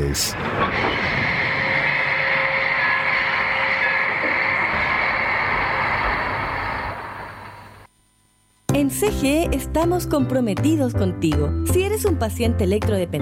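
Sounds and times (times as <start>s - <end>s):
train rolling on rails: 0.0s - 7.9s
speech: 0.1s - 1.2s, 8.8s - 13.1s.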